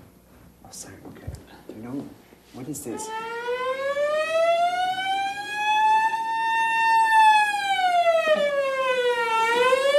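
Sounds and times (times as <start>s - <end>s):
speech: 0.7s - 3.4s
emergency vehicle siren wailing: 3.0s - 9.9s.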